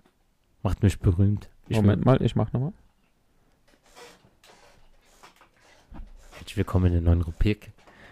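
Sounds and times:
speech: 0:00.6 - 0:02.8, 0:06.6 - 0:07.8
old office chair creaking and squeaking: 0:03.6 - 0:06.7.

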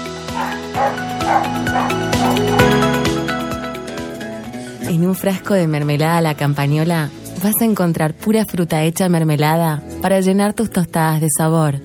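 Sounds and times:
upbeat music: 0:00.0 - 0:11.3
dog barking: 0:00.3 - 0:02.8
speech: 0:04.9 - 0:11.8.

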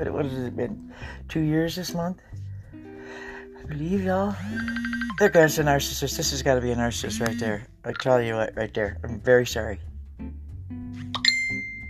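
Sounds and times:
speech: 0:00.0 - 0:02.4, 0:03.1 - 0:10.4
bright electronic ding from a phone ringing: 0:04.4 - 0:05.4, 0:07.1 - 0:07.6.

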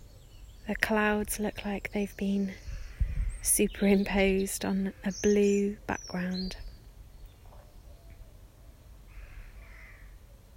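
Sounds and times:
speech: 0:00.7 - 0:02.7, 0:03.4 - 0:06.6
crows cawing outdoors: 0:09.1 - 0:10.2.

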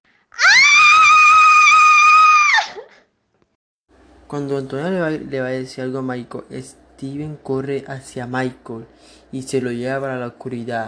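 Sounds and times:
high-pitched frightened scream: 0:00.3 - 0:03.1
speech: 0:04.3 - 0:10.8.

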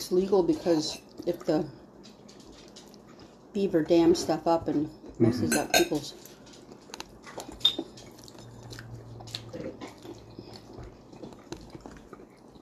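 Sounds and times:
speech: 0:00.1 - 0:01.8, 0:03.6 - 0:06.3
person chewing crunchy food: 0:00.6 - 0:03.5, 0:06.0 - 0:12.6.

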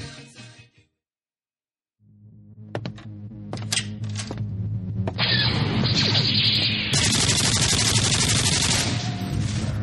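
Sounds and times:
low throbbing hum: 0:02.1 - 0:05.8
video game double-barreled nuclear plasma cannon gunfire: 0:05.2 - 0:09.7.

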